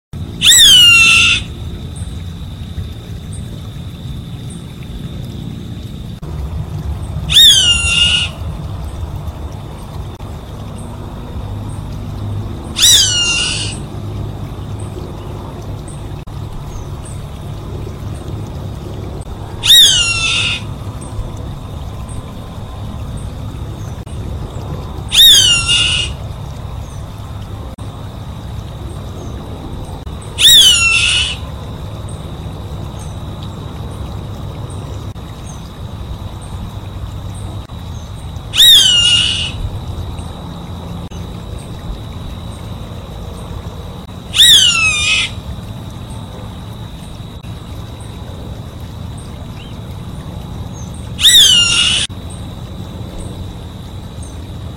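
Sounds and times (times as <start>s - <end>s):
long-legged hawk calling: 0.4s - 1.5s, 7.3s - 8.4s, 12.8s - 13.8s, 19.6s - 20.7s, 25.1s - 26.2s, 30.4s - 31.4s, 38.6s - 39.6s, 44.4s - 45.4s, 51.2s - 52.1s.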